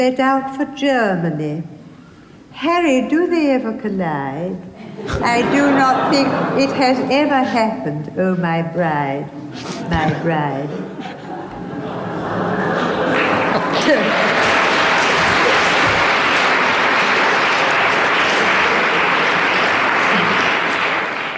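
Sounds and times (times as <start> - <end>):
speech: 0.0 - 1.8, 2.6 - 10.9
laughter: 4.8 - 7.9, 9.4 - 21.2
audience applause after a poetry reading: 11.8 - 21.3.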